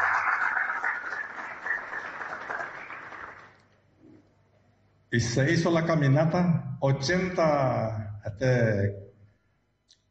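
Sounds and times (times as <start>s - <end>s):
crowd applauding: 0.0s - 3.6s
speech: 5.1s - 9.0s.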